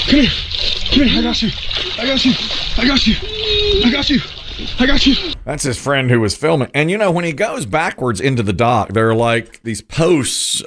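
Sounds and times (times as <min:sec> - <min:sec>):
water splashing and churning after jet ski crash: 0:00.0 - 0:05.4
speech: 0:00.1 - 0:10.6
voices shouting and calling out: 0:00.9 - 0:05.4.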